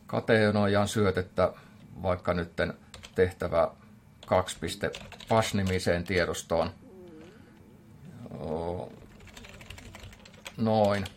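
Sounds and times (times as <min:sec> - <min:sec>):
speech: 0:00.1 - 0:06.8, 0:10.6 - 0:11.1
typing on a computer keyboard: 0:02.9 - 0:03.2, 0:04.2 - 0:06.3, 0:08.9 - 0:11.1
person humming: 0:06.8 - 0:07.6.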